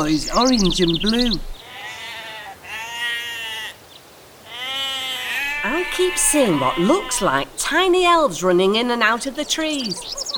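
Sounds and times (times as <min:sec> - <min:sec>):
speech: 0:00.0 - 0:01.6, 0:05.9 - 0:10.3
sheep bleating: 0:01.6 - 0:03.8, 0:04.4 - 0:07.5.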